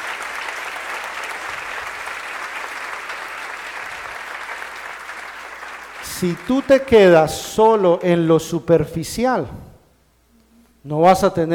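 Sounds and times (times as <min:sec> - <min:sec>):
audience applause: 0:00.0 - 0:08.0
speech: 0:06.2 - 0:09.7, 0:10.8 - 0:11.5.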